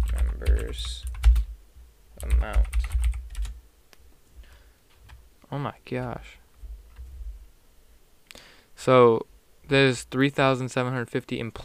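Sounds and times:
typing on a computer keyboard: 0.0 - 1.5, 2.2 - 3.6
speech: 0.4 - 1.1, 2.2 - 2.9, 5.5 - 6.4, 8.8 - 11.6.

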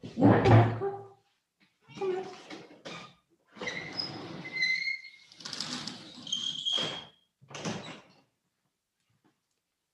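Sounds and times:
door opening and closing to let a cat outside: 2.0 - 8.2.

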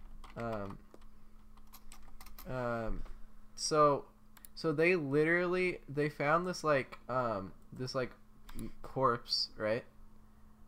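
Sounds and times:
typing on a computer keyboard while searching a website: 0.0 - 2.5
speech: 0.4 - 0.9, 2.4 - 9.9.

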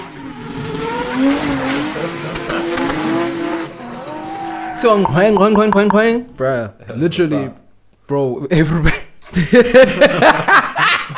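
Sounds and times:
car tires squealing as the car drives off: 0.0 - 5.0
speech: 4.8 - 10.7
laughter: 9.3 - 11.1.

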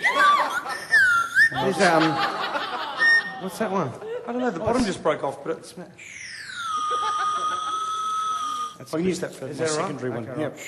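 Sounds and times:
people laughing: 0.0 - 5.0, 6.7 - 8.6
candy whistle pop blown in shrill toots: 0.2 - 2.1, 6.0 - 9.0
speech: 1.6 - 2.4, 3.4 - 6.2, 8.8 - 10.6.

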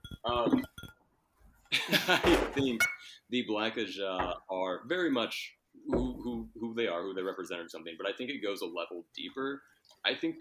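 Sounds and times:
glasses clinking together: 0.0 - 1.0, 2.7 - 3.1
speech: 0.2 - 0.6, 1.8 - 6.1, 6.8 - 10.3.

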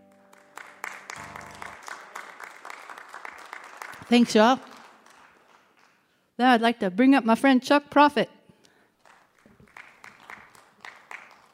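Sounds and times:
concert crowd cheering and applauding: 0.0 - 6.1, 9.0 - 11.5
speech: 4.1 - 4.7, 6.4 - 8.4.

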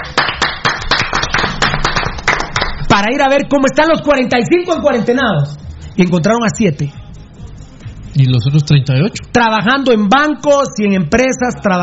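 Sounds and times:
hands clapping in applause: 0.0 - 3.0
speech: 3.0 - 7.0, 8.2 - 11.8.

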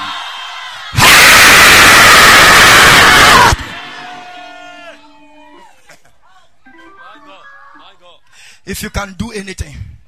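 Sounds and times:
church congregation shouting and screaming: 0.0 - 6.6
speech: 8.7 - 10.0.

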